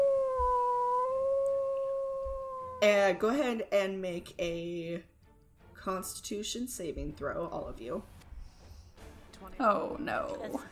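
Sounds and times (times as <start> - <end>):
voice imitating a long pained howl: 0.0 - 2.9
speech: 2.8 - 5.1, 5.8 - 8.2, 9.4 - 10.7.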